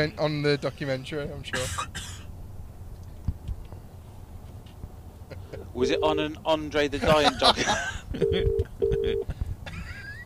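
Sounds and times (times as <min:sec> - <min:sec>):
speech: 0:00.0 - 0:02.2, 0:05.8 - 0:09.4
laughter: 0:05.3 - 0:06.1, 0:06.8 - 0:10.2
telephone ringing with an electronic double trill: 0:05.8 - 0:06.3, 0:08.2 - 0:09.2.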